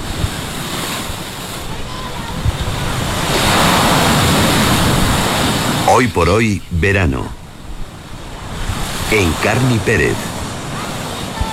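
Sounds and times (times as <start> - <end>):
wind buffeting the microphone: 0.0 - 5.9, 7.3 - 9.1, 10.2 - 11.5
ocean waves breaking on a beach: 0.0 - 11.5
speech: 6.0 - 7.4, 9.1 - 10.3.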